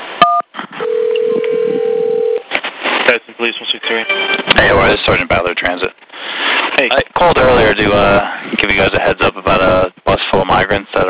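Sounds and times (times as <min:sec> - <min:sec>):
long steady telephone tone: 0:00.2 - 0:02.5
speech: 0:03.1 - 0:06.1, 0:06.8 - 0:11.0.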